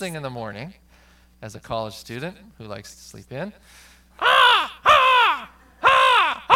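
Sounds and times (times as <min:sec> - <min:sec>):
speech: 0:00.0 - 0:04.7
crows cawing in pine trees in the morning: 0:04.2 - 0:06.5.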